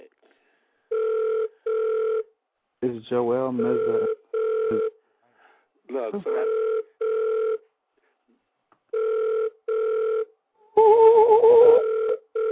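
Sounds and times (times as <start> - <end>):
telephone ringing unanswered, two-tone ringback over the line: 0.9 - 2.3, 3.6 - 4.9, 6.3 - 7.6, 8.9 - 10.3, 11.4 - 12.5
speech: 2.8 - 5.0, 5.9 - 6.7.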